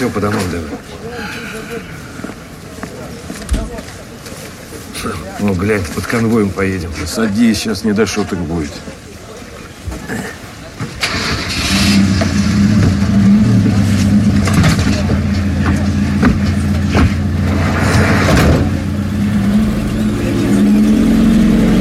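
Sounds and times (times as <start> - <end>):
speech: 0.0 - 2.0, 5.0 - 9.0
minibus engine starting and running: 11.0 - 21.7.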